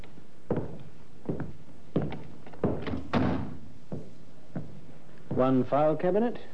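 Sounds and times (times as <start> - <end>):
unlocked business door pushed open with thumps and clunks: 2.0 - 3.6
speech: 5.4 - 6.5.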